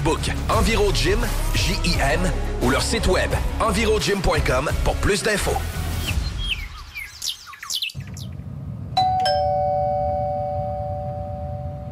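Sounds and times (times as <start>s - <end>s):
speech: 0.1s - 5.8s
birds chirping and tweeting: 6.0s - 8.5s
doorbell chimes: 9.0s - 11.9s.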